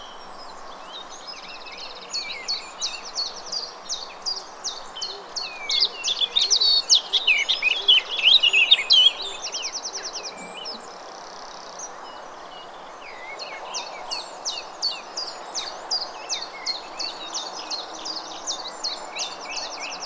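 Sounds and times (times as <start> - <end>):
blackcap vocalising: 5.0 - 12.2.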